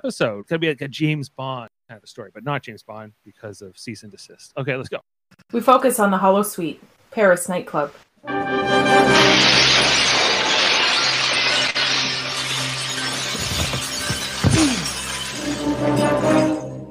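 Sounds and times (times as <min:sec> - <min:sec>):
speech: 0:00.0 - 0:09.8
large decorative glass wall shattering in a nightclub: 0:09.0 - 0:16.8
breaking and tinkling glass shards raining down: 0:09.4 - 0:16.8.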